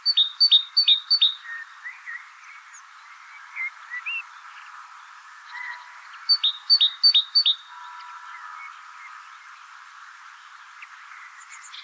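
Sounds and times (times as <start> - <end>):
great tit (Parus major) calling: 0.0 - 2.8, 5.5 - 8.6.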